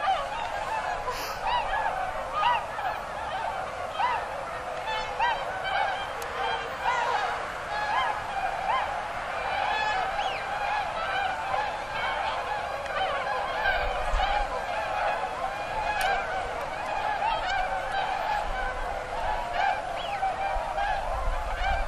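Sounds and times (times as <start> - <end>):
large group of swans honking: 0.0 - 21.8.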